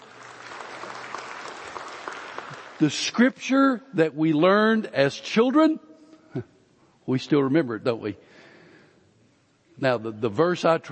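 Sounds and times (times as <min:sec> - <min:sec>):
crowd applauding: 0:00.0 - 0:03.1
speech: 0:02.8 - 0:06.5, 0:07.1 - 0:08.4, 0:09.8 - 0:10.9.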